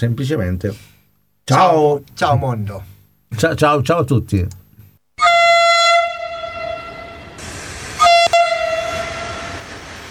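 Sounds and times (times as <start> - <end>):
speech: 0.0 - 4.6
loud train horn blasts: 5.2 - 7.4, 8.0 - 9.7
rumble of a passing train: 5.7 - 10.0.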